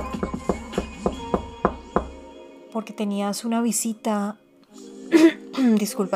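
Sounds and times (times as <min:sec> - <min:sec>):
knocking on a wooden door: 0:00.0 - 0:02.2
speech: 0:02.8 - 0:04.4, 0:05.1 - 0:06.1.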